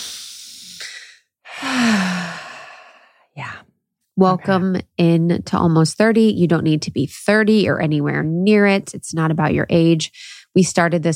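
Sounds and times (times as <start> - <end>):
slow deep breath in and out: 0.0 - 3.4
soft sigh: 0.0 - 3.5
speech: 4.2 - 11.1.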